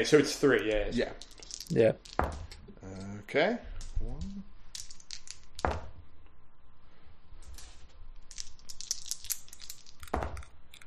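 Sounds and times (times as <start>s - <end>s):
speech: 0.0s - 2.2s, 3.3s - 4.3s
handful of dice rattling and tumbling onto a hard surface: 0.9s - 2.6s, 3.8s - 4.0s, 4.6s - 6.0s, 7.4s - 10.8s.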